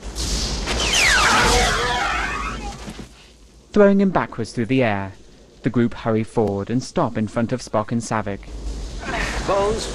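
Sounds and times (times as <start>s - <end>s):
handheld phaser weapon firing a sci-fi energy blast: 0.0s - 2.8s
speech: 3.8s - 9.9s.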